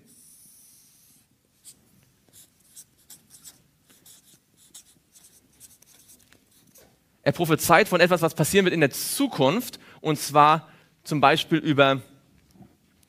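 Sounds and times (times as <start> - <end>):
quiet hiss: 0.0 - 13.0
pen or chalk strokes of handwriting: 0.1 - 6.9
speech: 7.3 - 12.1.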